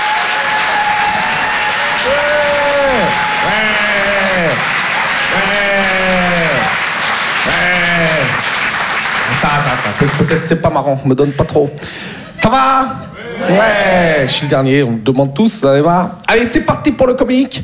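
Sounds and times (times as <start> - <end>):
audience cheering with drawn-out whoops at a live comedy show: 0.0 - 6.9
audience applause at a live comedy show in a Paris theatre: 0.0 - 10.7
laughter: 1.1 - 14.5
speech: 9.9 - 17.6.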